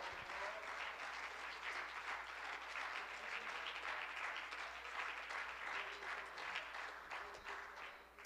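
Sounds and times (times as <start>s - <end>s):
audience clapping hands in dense applause: 0.0s - 8.2s.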